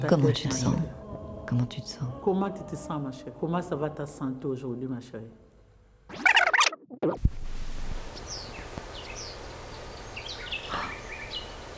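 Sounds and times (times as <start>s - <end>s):
speech: 0.0s - 5.4s
bird chirping: 8.1s - 11.7s
faint bird calls: 10.1s - 11.6s.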